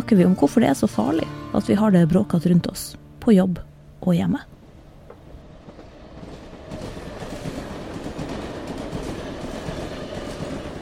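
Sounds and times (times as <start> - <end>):
speech: 0.1 - 4.6
train rumbling along rails at a railway work site: 4.5 - 10.7.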